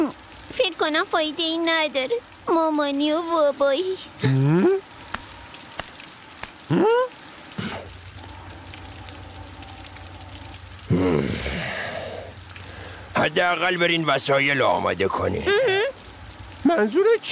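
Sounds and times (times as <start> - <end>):
steady rain falling: 0.0 - 17.3
speech: 0.5 - 4.8, 13.3 - 15.7, 16.8 - 17.3
short voiced cries or sighs: 6.7 - 13.1.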